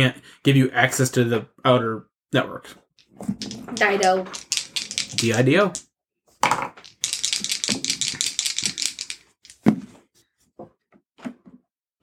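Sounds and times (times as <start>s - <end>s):
speech: 0.0s - 4.4s, 5.1s - 6.7s
dice clattering across a hard table: 3.0s - 5.8s, 6.4s - 9.8s.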